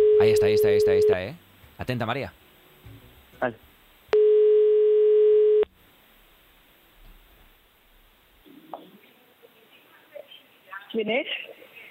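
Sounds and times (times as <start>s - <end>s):
telephone tone on a live call: 0.0s - 1.2s, 4.1s - 5.7s
speech: 0.2s - 3.7s, 10.9s - 11.5s.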